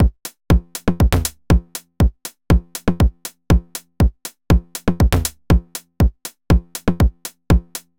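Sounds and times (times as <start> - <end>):
deep house drum loop: 0.0 - 7.9.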